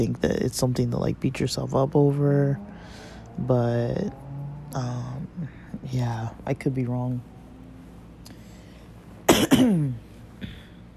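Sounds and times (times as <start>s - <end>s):
speech: 0.0s - 7.3s
person coughing: 9.3s - 10.8s.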